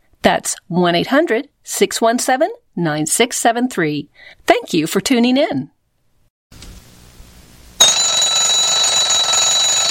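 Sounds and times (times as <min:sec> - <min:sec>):
speech: 0:00.2 - 0:05.8
alarm clock ringing with a continuous electronic tone: 0:07.8 - 0:09.8.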